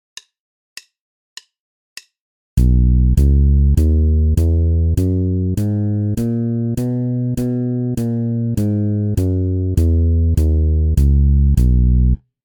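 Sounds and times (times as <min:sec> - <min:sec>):
B major scale exercise: 0:02.6 - 0:12.2.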